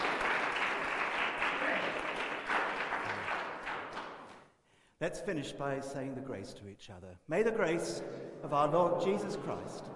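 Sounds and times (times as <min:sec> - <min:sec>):
crowd applauding: 0:00.0 - 0:04.4
speech: 0:05.0 - 0:09.9.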